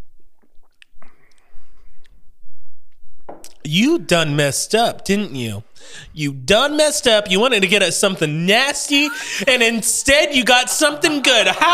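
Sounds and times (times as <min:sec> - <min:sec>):
lip smacks and mouth clicks while tasting a grape drink: 0:00.4 - 0:02.2, 0:03.4 - 0:03.6
speech: 0:03.6 - 0:11.7
laughter: 0:07.7 - 0:11.7.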